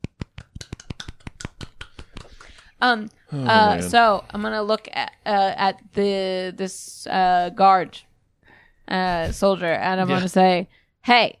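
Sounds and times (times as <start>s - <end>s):
soft slow golf clap hand clapping: 0.0s - 2.8s
speech: 2.8s - 8.1s, 8.9s - 11.3s.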